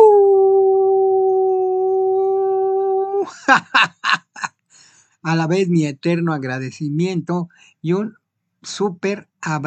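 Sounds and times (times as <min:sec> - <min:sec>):
person howling: 0:00.0 - 0:03.4
speech: 0:03.5 - 0:04.2, 0:05.2 - 0:09.6.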